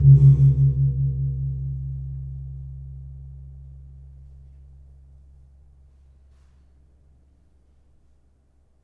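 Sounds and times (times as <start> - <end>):
kempul gamelan gong: 0.0 - 3.2.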